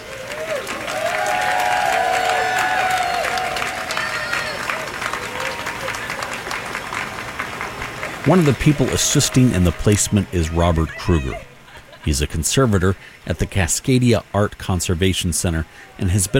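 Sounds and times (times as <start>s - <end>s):
crowd of a few hundred people outdoors applauding and cheering: 0.0s - 11.4s
laughter: 8.2s - 12.4s
speech: 8.2s - 16.3s
scattered shouts and voices: 8.4s - 11.6s.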